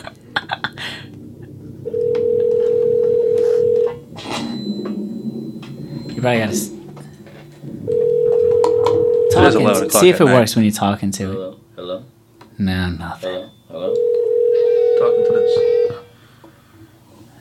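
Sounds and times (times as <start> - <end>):
electronic telephone ringing tone: 1.8 - 10.0, 13.8 - 16.2
speech: 6.2 - 6.7, 9.4 - 11.6, 12.6 - 13.4.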